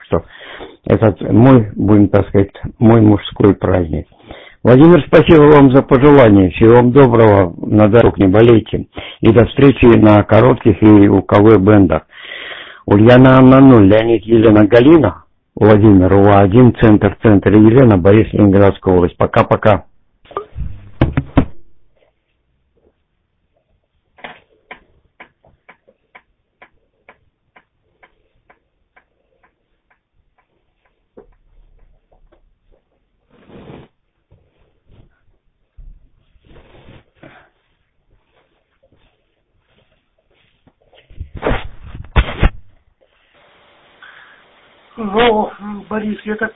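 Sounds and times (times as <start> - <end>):
speech: 0.1 - 12.1, 12.8 - 19.9, 45.0 - 46.5
louder knocks: 20.8 - 21.7
clock ticking: 24.7 - 31.9
rustling bursts: 32.6 - 43.5.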